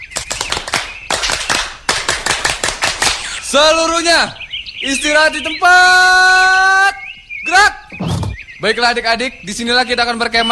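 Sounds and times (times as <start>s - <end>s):
scout troop clapping in a patterned rhythm: 0.2s - 3.2s
speech: 3.5s - 10.5s.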